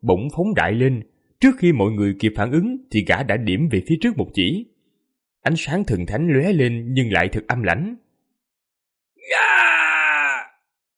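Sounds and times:
speech: 0:00.0 - 0:04.7, 0:05.4 - 0:08.0
anguished scream of agony: 0:09.2 - 0:10.6.

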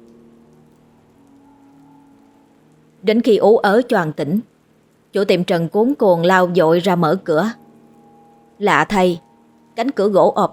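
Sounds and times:
rain falling on a stormy night: 0:00.0 - 0:10.5
speech: 0:03.0 - 0:04.5, 0:05.1 - 0:07.6, 0:08.6 - 0:09.2, 0:09.8 - 0:10.5.

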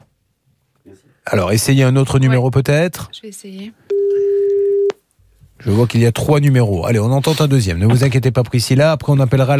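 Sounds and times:
speech: 0:00.9 - 0:03.9, 0:05.6 - 0:09.5
telephone ringback tone on an unanswered mobile call: 0:03.9 - 0:04.9.

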